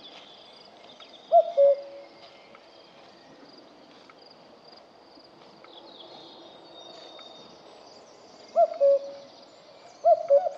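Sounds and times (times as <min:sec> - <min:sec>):
faint background hiss: 0:00.0 - 0:10.5
common cuckoo Cuculus canorus calling: 0:01.0 - 0:02.6, 0:08.5 - 0:10.5.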